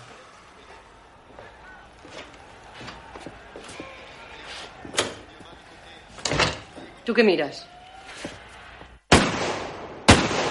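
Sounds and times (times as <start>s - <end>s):
speech: 7.1s - 7.7s
gunshots from target practice echoing: 9.1s - 10.5s.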